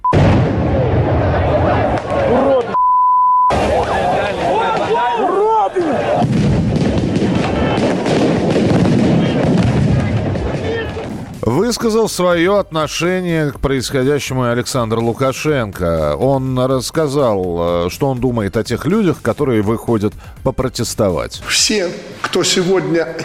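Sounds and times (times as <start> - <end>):
gunfire and explosions in a city street at night: 0.0 - 2.8, 3.5 - 11.9
people shouting in a crowded street: 0.7 - 2.8, 3.5 - 8.1, 9.0 - 11.2
steady electronic beep: 2.8 - 3.5
speech: 11.7 - 23.2.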